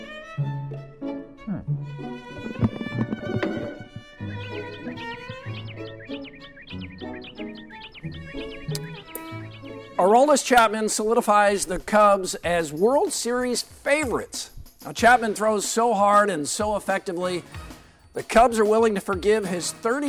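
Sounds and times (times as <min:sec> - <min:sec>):
dense musical backdrop: 0:00.0 - 0:20.0
hawk calling: 0:02.4 - 0:10.1
speech: 0:10.0 - 0:20.0.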